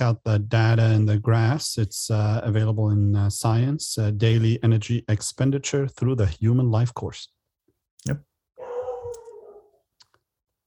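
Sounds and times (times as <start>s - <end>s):
speech: 0.0s - 7.4s, 8.0s - 8.3s
dog letting out a drawn-out tonal cry: 8.6s - 9.8s.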